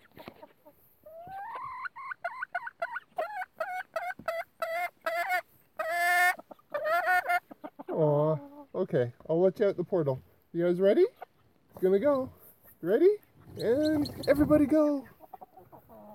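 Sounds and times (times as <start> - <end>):
turkeys gobbling at their coop: 0.0 - 8.8, 11.1 - 16.1
turkeys whining at their coop: 0.0 - 8.8, 12.6 - 16.1
speech: 8.8 - 11.2, 11.8 - 15.1.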